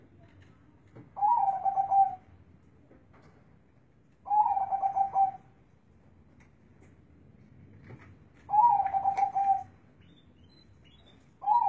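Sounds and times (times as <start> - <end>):
local Indonesian zebra dove cooing: 1.2 - 2.2, 4.3 - 5.4, 8.5 - 9.7, 11.4 - 11.6.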